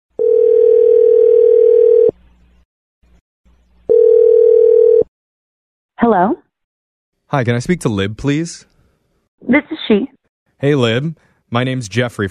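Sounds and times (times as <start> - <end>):
telephone dial tone while dialing a call: 0.2 - 2.1, 3.9 - 5.1
speech: 6.1 - 6.4, 7.3 - 8.7, 9.4 - 12.2.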